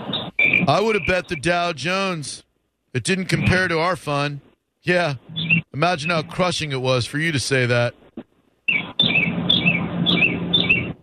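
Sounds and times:
birds chirping in high bursts: 0.0 - 1.7, 5.2 - 6.5, 8.7 - 11.0
steady background noise: 0.0 - 11.0
speech: 0.7 - 8.0.

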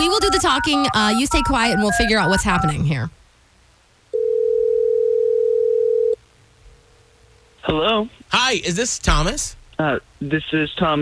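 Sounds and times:
telephone tone dialing out on a call: 0.0 - 2.8, 4.1 - 6.2
speech: 0.1 - 3.2, 7.7 - 10.9.

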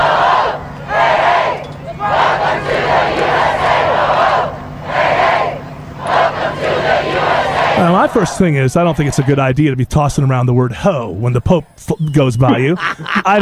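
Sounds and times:
large crowd chanting in unison as the Pope arrives in Washington, D.C.: 0.0 - 9.8
constant roar of massed voices: 0.0 - 10.3
speech: 7.8 - 13.4
laughter: 12.3 - 13.4.

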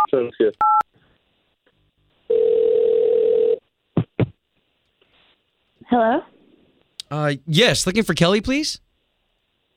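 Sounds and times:
speech: 0.2 - 0.8, 6.0 - 6.3, 7.1 - 8.8
telephone dial tone while placing a call: 2.3 - 3.6.

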